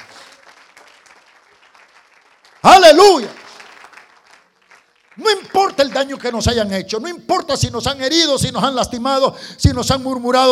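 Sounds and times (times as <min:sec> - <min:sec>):
crowd applauding: 0:00.0 - 0:06.7
speech: 0:02.6 - 0:03.4, 0:05.2 - 0:10.4.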